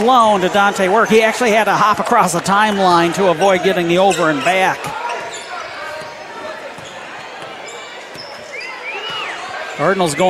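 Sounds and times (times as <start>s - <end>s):
speech: 0.0s - 5.0s, 9.8s - 10.2s
crowd noise: 0.0s - 10.2s
basketball dribbled on a court during a game: 4.8s - 9.7s.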